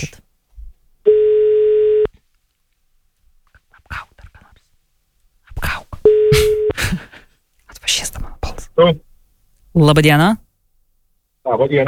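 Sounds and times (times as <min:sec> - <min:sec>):
speech: 0:00.0 - 0:00.2, 0:08.8 - 0:09.1, 0:09.8 - 0:10.4, 0:11.4 - 0:11.8
telephone ring-back tone while a call is being placed: 0:01.1 - 0:02.1, 0:06.1 - 0:06.7.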